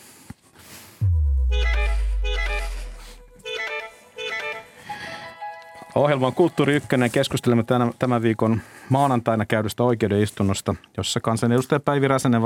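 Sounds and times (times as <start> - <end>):
deep booming low tone: 1.0 - 3.4
horn music in bright melodic phrases: 1.0 - 4.9
speech: 6.0 - 12.4.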